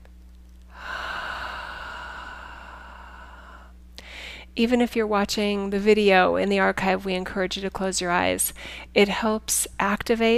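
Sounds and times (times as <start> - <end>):
faint low hum: 0.0 - 10.3
deep breath: 0.7 - 4.5
speech: 4.6 - 10.3.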